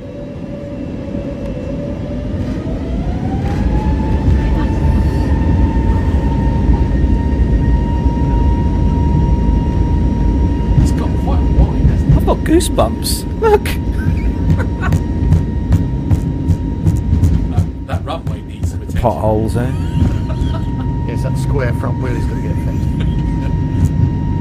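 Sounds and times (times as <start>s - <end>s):
aircraft engines roaring on a runway: 0.0s - 24.3s
speech: 12.5s - 13.9s, 19.0s - 20.0s, 21.2s - 22.7s
laughter: 13.4s - 15.3s, 17.5s - 24.0s.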